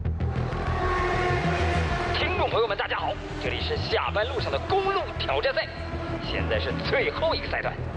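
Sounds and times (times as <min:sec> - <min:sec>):
race car engines roaring on a track: 0:00.1 - 0:07.9.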